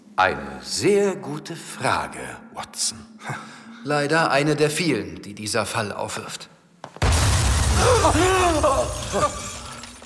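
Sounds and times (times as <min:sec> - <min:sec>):
speech: 0:00.2 - 0:06.6, 0:07.8 - 0:09.5
explosion: 0:07.0 - 0:09.8.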